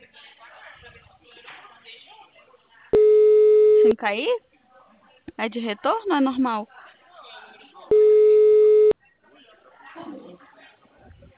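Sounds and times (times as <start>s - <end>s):
telephone ringing tone while placing a call: 3.0s - 3.9s, 7.9s - 9.0s
speech: 3.8s - 4.5s, 5.4s - 6.8s.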